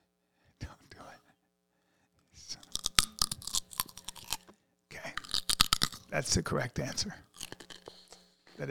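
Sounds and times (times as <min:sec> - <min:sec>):
crunching a bite of raw carrot: 0:02.6 - 0:06.2, 0:06.8 - 0:08.1
speech: 0:06.1 - 0:07.3.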